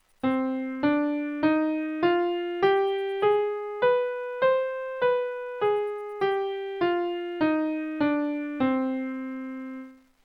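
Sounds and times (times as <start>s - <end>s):
C harmonic tone: 0.2s - 10.0s.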